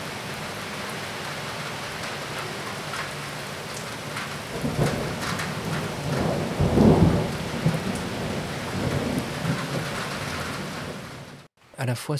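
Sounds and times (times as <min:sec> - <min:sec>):
heavy rain pouring in a thunderstorm: 0:00.0 - 0:11.5
deep roll of thunder: 0:03.8 - 0:11.5
speech: 0:11.9 - 0:12.1.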